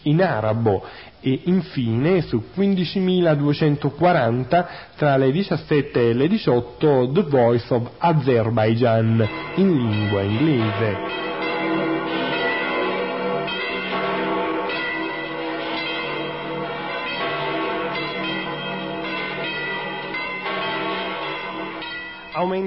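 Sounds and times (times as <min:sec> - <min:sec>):
speech: 0:00.0 - 0:11.9, 0:22.4 - 0:22.6
church bells of St. Peter's Basilica in the Vatican pealing: 0:08.8 - 0:22.6.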